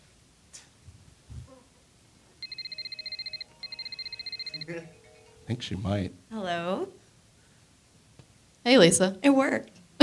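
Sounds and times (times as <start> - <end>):
fast warbling electronic ring tone in a phone earpiece: 2.4 - 6.0
speech: 4.7 - 7.0, 8.6 - 10.0.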